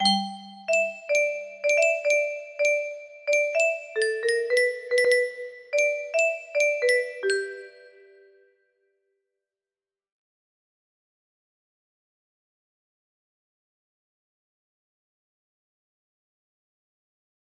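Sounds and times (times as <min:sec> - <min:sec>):
music box melody: 0:00.0 - 0:08.4.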